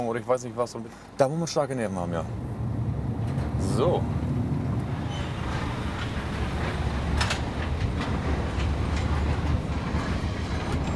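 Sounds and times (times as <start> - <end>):
speech: 0.1 - 2.5, 3.6 - 4.4
car-carrying train wagon rolling along the rails: 2.1 - 10.9.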